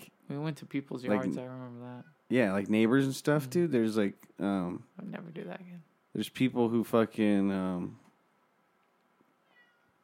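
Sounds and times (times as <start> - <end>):
speech: 0.3 - 8.0
cat meowing at a door: 9.4 - 10.0.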